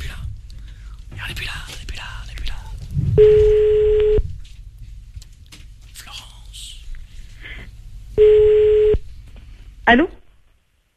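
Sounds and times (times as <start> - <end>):
faint low rumbling: 0.0 - 10.3
speech: 1.1 - 2.6, 3.2 - 3.6, 9.9 - 10.2
telephone tone as a call is placed: 3.2 - 4.2, 8.2 - 9.0.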